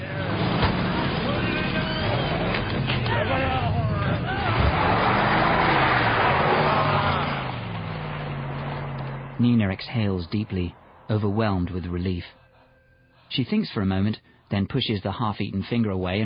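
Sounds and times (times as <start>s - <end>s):
pickup truck engine rumbling while reversing and driving off: 0.0s - 14.1s
speech: 9.4s - 12.4s, 13.3s - 16.2s.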